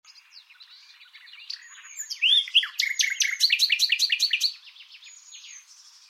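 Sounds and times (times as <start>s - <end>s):
common nightingale Luscinia megarhynchos singing: 0.0s - 6.0s.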